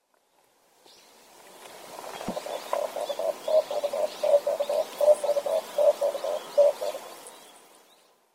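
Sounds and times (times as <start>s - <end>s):
red turtle dove calling on Yonaguni: 2.0s - 7.7s.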